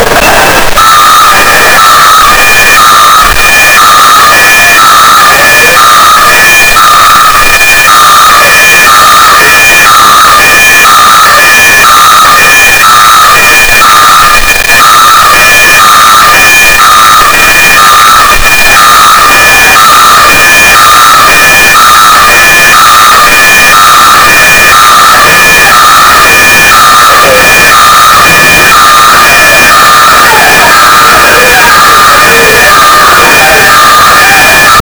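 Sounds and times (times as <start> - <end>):
airport fire alarm at Dublin Airport: 0.0 - 34.9.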